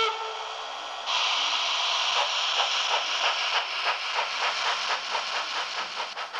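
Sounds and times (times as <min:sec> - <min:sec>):
model steam locomotive steam hissing: 0:00.0 - 0:06.3.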